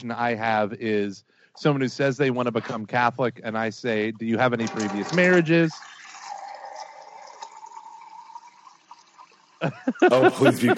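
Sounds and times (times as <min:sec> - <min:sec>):
speech: 0:00.0 - 0:06.0, 0:09.6 - 0:10.7
water running from a tap or spout: 0:04.7 - 0:09.7
laughter: 0:09.6 - 0:10.7.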